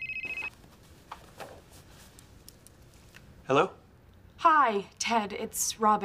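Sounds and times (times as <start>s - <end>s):
telephone giving a short loud electronic ring: 0.0s - 0.5s
speech: 3.5s - 3.8s, 4.4s - 6.0s.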